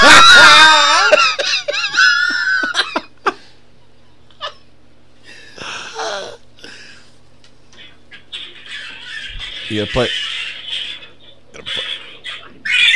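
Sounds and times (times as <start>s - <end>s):
cat yowling and screeching while attacking a man: 0.0s - 1.2s, 12.6s - 12.9s
man's startled cries: 0.0s - 1.4s
laughter: 0.0s - 3.5s
speech: 9.7s - 10.2s.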